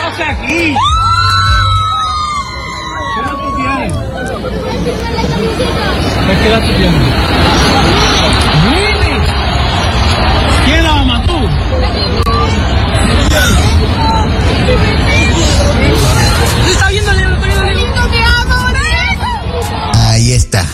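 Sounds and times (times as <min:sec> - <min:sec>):
dense crowd shouting and cheering at a live event: 0:00.0 - 0:20.7
high excited voices and whoops: 0:00.8 - 0:04.3.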